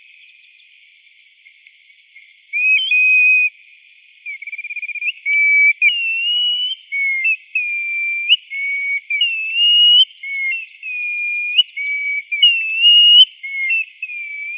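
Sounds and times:
grey plover calling: 0:02.6 - 0:03.5, 0:05.0 - 0:14.5.

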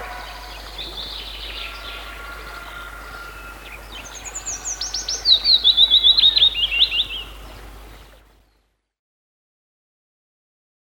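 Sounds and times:
willow warbler singing: 0:00.0 - 0:08.2
background hiss: 0:00.0 - 0:08.6.

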